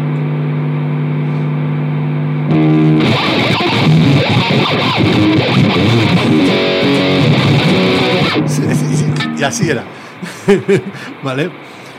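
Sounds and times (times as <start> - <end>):
idle guitar amplifier without noise gate humming: 0.0 - 11.9
loud harsh guitar amplifier buzz and crackling hiss: 2.4 - 10.5
speech: 4.7 - 6.5, 8.4 - 11.8
person laughing: 8.4 - 11.2.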